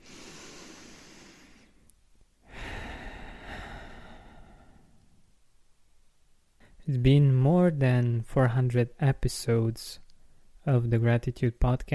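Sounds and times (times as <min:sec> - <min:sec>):
deep breath in and out: 0:00.0 - 0:05.3
speech: 0:06.9 - 0:10.0, 0:10.6 - 0:11.9.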